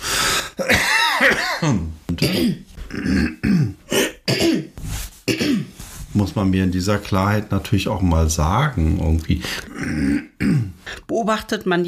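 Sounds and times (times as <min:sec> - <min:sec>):
person clearing throat: 0:00.6 - 0:05.8, 0:09.6 - 0:10.8
speech: 0:01.4 - 0:03.4, 0:06.4 - 0:10.3, 0:11.2 - 0:11.8.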